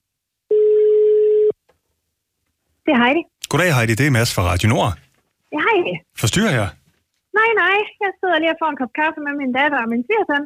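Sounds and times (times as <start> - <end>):
outgoing telephone call ringing tone: 0.5 - 1.6
speech: 2.9 - 6.8, 7.4 - 10.4.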